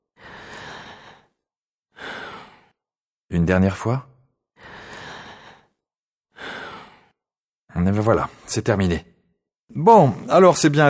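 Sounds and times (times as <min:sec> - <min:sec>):
deep breaths of a patient with a heavy cold during a chest examination: 0:00.0 - 0:03.0, 0:04.4 - 0:07.4
speech: 0:03.3 - 0:04.1, 0:07.8 - 0:09.1, 0:09.7 - 0:10.8.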